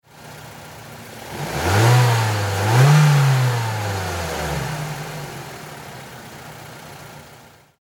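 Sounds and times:
Mazda 3 car engine high double rev: 0:01.2 - 0:05.9.

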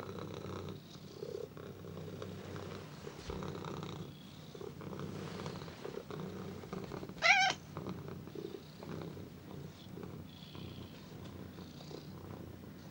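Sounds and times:
domestic cat purring: 0:00.0 - 0:12.8
domestic cat squealing: 0:07.2 - 0:07.6.

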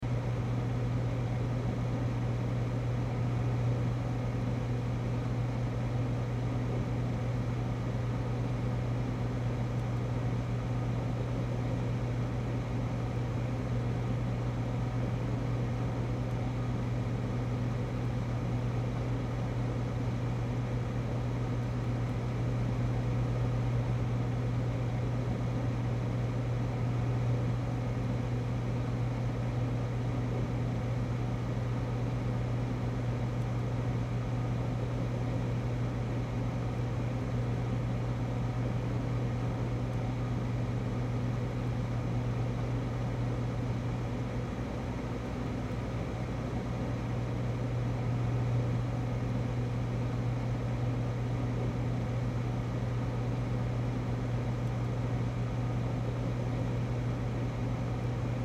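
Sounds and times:
restaurant kitchen freezer hum: 0:00.0 - 0:58.4.

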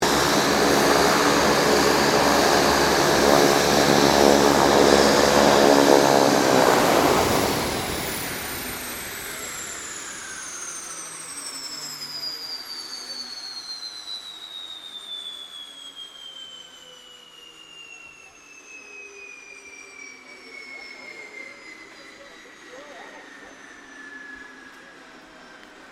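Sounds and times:
King Air 350 aircraft shutting down: 0:00.0 - 0:25.9.

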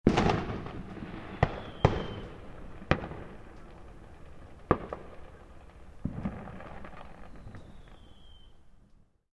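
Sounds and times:
distant fireworks exploding: 0:00.0 - 0:09.1.

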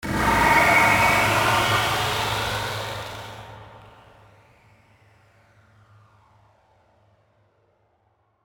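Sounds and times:
ascending flange sweep: 0:00.0 - 0:04.1.

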